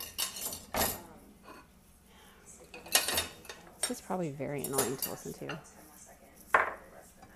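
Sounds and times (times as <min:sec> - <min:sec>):
dishes and cutlery clattering while cleaning a kitchen: 0:00.0 - 0:01.7, 0:02.6 - 0:05.7
speech: 0:03.9 - 0:05.8.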